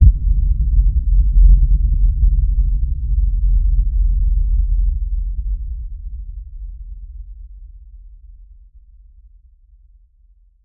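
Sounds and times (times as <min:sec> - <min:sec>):
deep bass rumble: 0:00.0 - 0:08.8.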